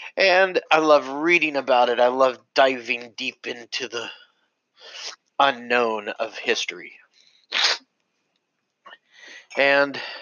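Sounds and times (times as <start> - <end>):
speech: 0.2 - 4.2, 4.8 - 7.7, 9.5 - 10.1
sharp sneeze: 7.5 - 7.8
faint breathy sound: 9.1 - 10.1.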